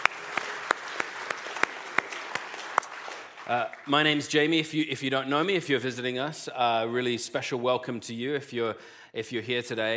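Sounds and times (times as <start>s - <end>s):
audience clapping and applauding: 0.0s - 4.9s
speech: 3.5s - 9.9s.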